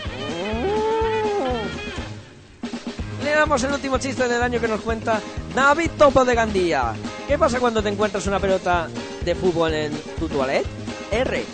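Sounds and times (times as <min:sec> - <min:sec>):
cow mooing: 0:00.0 - 0:01.9
speech: 0:03.4 - 0:11.5.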